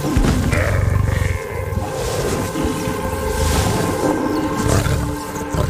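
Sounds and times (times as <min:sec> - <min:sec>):
lion roaring: 0:00.2 - 0:05.6.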